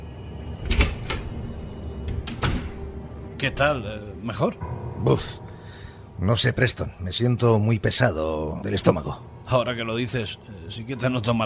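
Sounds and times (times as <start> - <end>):
door latch and handle clicking and knocking as door is opened: 0.6 - 2.9
speech: 3.4 - 5.4, 6.2 - 11.4.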